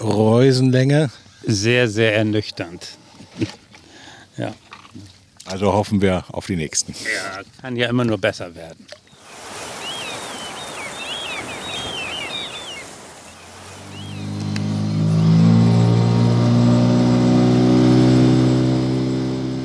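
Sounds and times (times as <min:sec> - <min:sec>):
speech: 0:00.0 - 0:03.6, 0:04.4 - 0:09.0
birds chirping: 0:09.0 - 0:17.7
rushing splashy water: 0:09.0 - 0:19.3
boat motor running: 0:11.1 - 0:19.6.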